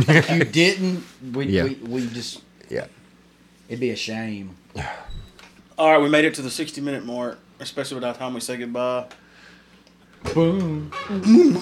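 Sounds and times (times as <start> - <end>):
speech: 0.0 - 3.0, 3.7 - 5.2, 5.8 - 9.2, 10.2 - 11.6
person imitating a chicken with a throaty cluck-like call: 10.3 - 11.6.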